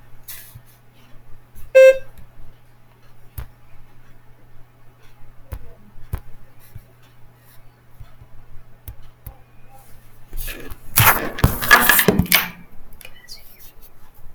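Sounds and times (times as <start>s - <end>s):
low steady hum: 0.0s - 14.3s
short loud electronic beep: 1.8s - 2.1s.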